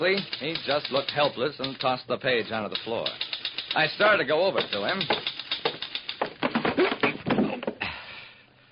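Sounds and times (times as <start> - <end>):
speech: 0.0 - 5.3
typewriter clattering with quick uneven keystrokes: 0.0 - 7.4.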